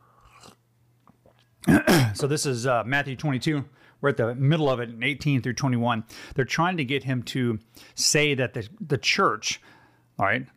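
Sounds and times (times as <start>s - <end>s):
short airy slurp of coffee: 0.1s - 0.6s
speech: 1.7s - 10.5s.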